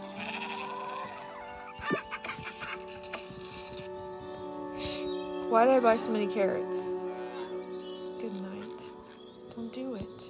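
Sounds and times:
goat bleating in a farming video game: 0.0s - 1.2s
steady musical farming game background: 0.0s - 10.2s
speech: 5.5s - 6.9s.

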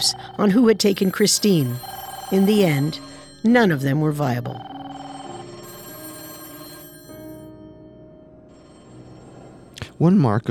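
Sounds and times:
speech: 0.0s - 4.7s, 10.0s - 10.5s
several telephones ringing with bells: 0.0s - 7.5s.

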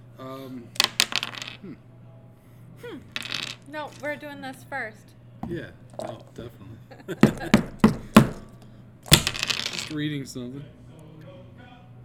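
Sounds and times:
speech: 0.3s - 0.8s, 1.6s - 2.0s, 2.8s - 8.1s, 9.9s - 10.8s
dice rattling in a dice cup: 0.8s - 1.6s, 3.1s - 4.1s, 5.9s - 6.3s, 7.3s - 10.0s.

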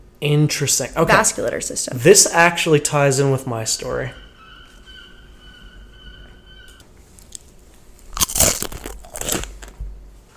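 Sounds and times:
speech: 0.2s - 4.2s
crunching on a snack being bitten and chewed: 7.2s - 10.3s.

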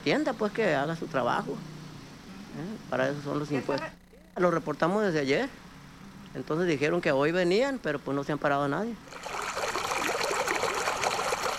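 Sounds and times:
speech: 0.0s - 1.7s, 2.5s - 5.6s, 6.3s - 9.4s
sewage water trickling along a street: 9.1s - 11.5s.

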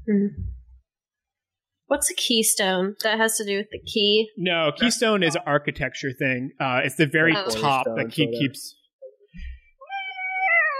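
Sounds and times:
speech: 0.1s - 0.6s, 1.9s - 9.5s
cat meowing: 9.8s - 10.7s.

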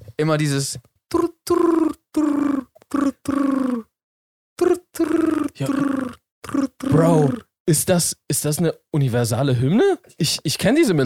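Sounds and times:
speech: 0.2s - 2.6s, 7.0s - 11.0s
person imitating pigeon cooing with low throaty hoots: 1.1s - 4.0s, 4.6s - 7.5s.

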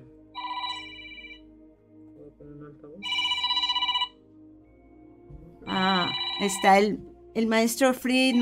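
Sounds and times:
telephone ringing with an incoming call: 0.4s - 1.4s, 3.0s - 4.2s, 5.7s - 6.9s
speech: 2.4s - 3.4s, 6.4s - 8.4s.

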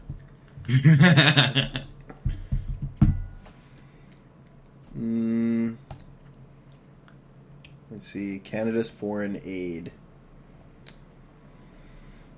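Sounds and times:
person chuckling: 0.6s - 2.5s
speech: 0.7s - 1.9s, 8.0s - 10.0s
computer keyboard typing: 5.9s - 6.1s.

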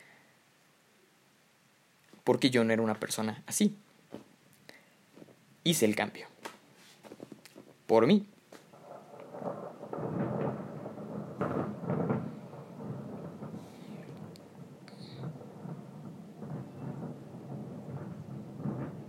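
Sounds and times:
steady rain falling: 0.0s - 19.0s
speech: 2.3s - 4.2s, 5.6s - 6.3s, 7.9s - 8.3s
low rumbling: 8.7s - 19.0s.

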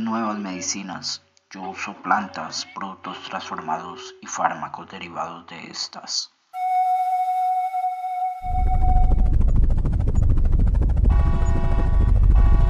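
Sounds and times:
speech: 0.1s - 6.4s
helicopter turbine whine: 7.2s - 12.6s
helicopter rotor thumping: 9.1s - 12.6s.

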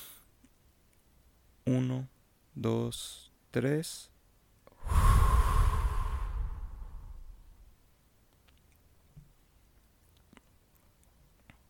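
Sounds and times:
speech: 1.7s - 4.1s
deep exhale during a breathing exercise: 4.8s - 7.6s.

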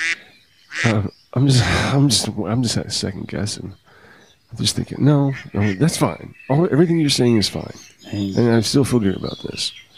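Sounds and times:
duck quacking: 0.0s - 1.0s
speech: 0.8s - 3.8s, 4.5s - 9.9s.

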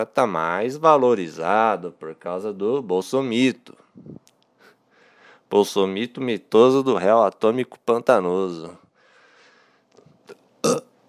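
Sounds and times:
speech: 0.0s - 4.2s, 5.5s - 8.8s
short loud burp: 10.6s - 10.9s.

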